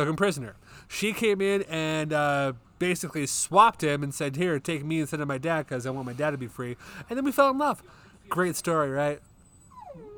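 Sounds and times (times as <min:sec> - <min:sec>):
speech: 0:00.0 - 0:09.3
dog whimpering: 0:09.4 - 0:10.1.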